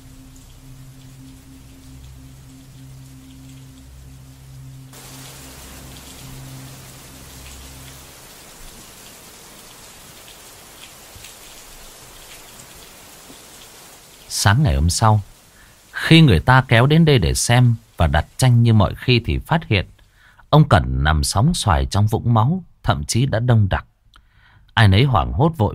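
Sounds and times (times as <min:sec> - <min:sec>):
low droning tone: 0:00.0 - 0:08.3
rain pouring onto the tin roof of a small attic: 0:00.0 - 0:20.5
speech: 0:14.4 - 0:15.3, 0:16.1 - 0:19.9, 0:20.5 - 0:23.9, 0:24.8 - 0:25.7.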